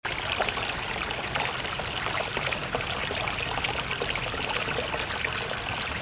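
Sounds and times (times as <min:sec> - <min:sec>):
babbling brook: 0:00.0 - 0:06.0.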